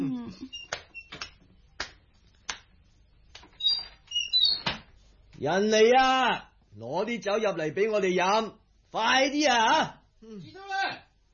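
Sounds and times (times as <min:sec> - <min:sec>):
door creaking as it swings open: 0:03.5 - 0:04.9
speech: 0:05.4 - 0:10.7.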